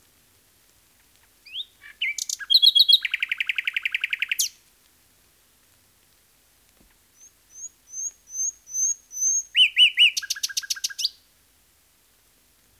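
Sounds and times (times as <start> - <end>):
Common nightingale song with trills and piping whistles: 1.5 - 4.6, 7.2 - 11.2.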